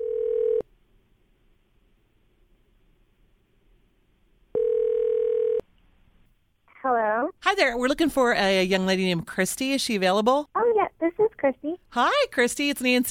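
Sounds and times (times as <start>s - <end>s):
phone line ringing with buzzy electronic ring tones: 0.0s - 0.6s, 4.6s - 5.6s
speech: 7.6s - 10.6s, 11.4s - 13.0s.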